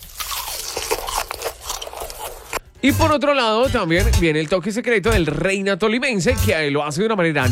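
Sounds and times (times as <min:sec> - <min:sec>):
crunching of crispy pork skin seasoned with salt pepper and lemon: 0:00.0 - 0:02.7
speech: 0:02.8 - 0:07.5.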